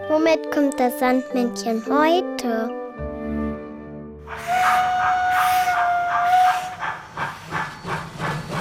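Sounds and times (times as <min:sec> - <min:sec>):
speech: 0:00.3 - 0:02.7
steam locomotive shrill whistle: 0:04.3 - 0:07.5
loud hissing steam from a steam locomotive: 0:04.3 - 0:08.5
steam locomotive chuffing as it pulls away: 0:04.3 - 0:08.5.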